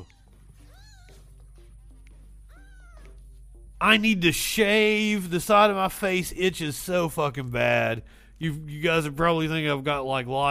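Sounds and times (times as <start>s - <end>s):
kittens meowing in high thin calls: 0.0s - 1.3s, 2.5s - 3.2s
steady low hum: 0.0s - 10.4s
speech: 3.8s - 10.4s.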